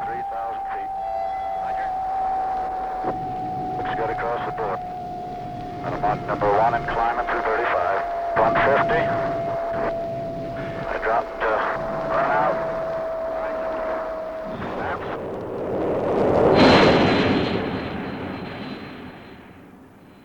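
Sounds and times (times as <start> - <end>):
people speaking: 0.0 - 2.0, 2.6 - 4.8, 5.8 - 9.9, 10.5 - 15.2
experimental rocket plane roaring in flight: 0.0 - 20.0.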